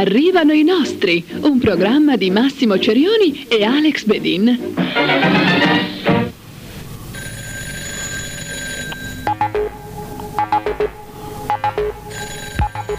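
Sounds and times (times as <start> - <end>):
speech: 0.1 - 5.9
telephone ringing loudly: 7.1 - 9.7, 10.4 - 12.9.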